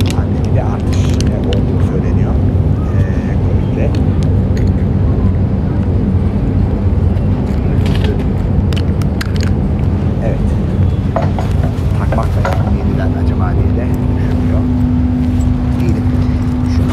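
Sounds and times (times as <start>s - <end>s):
faint indistinct voices: 0.0s - 8.6s, 10.2s - 16.9s
ferry engine rumbling at the dock in Istanbul: 0.0s - 16.9s
low droning hum: 0.0s - 16.9s.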